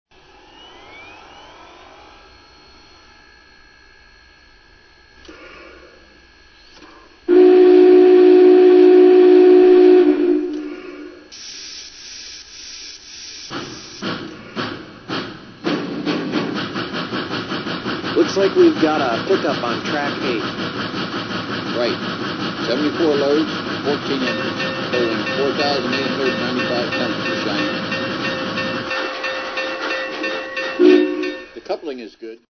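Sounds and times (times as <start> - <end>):
Big Boy locomotive train: 6.1 - 12.6, 13.5 - 32.0.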